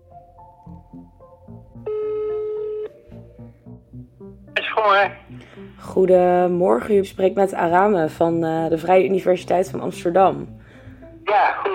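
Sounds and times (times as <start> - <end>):
music: 0.0 - 11.7
ringback tone of an outgoing phone call: 1.8 - 3.2
speech: 4.8 - 5.2, 5.8 - 10.6.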